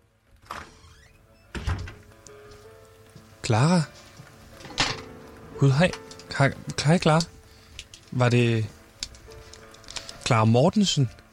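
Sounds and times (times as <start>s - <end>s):
door opening with a creak: 0.4s - 2.1s
speech: 3.5s - 4.0s, 5.6s - 7.3s, 8.1s - 8.8s, 10.3s - 11.2s.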